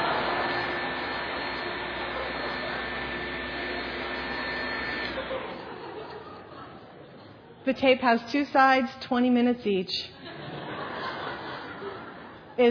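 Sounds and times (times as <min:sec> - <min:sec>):
laughter: 0:00.0 - 0:04.2, 0:05.0 - 0:07.6, 0:10.2 - 0:12.6
vacuum cleaner running with faint high whine: 0:00.0 - 0:06.4
speech: 0:07.6 - 0:10.2.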